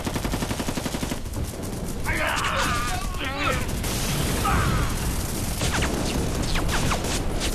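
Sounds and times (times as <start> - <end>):
rifle and machine-gun fire in a staged war-drama ambush: 0.0 - 7.5
people shouting in a staged war-drama battle: 2.0 - 3.7, 4.4 - 5.1.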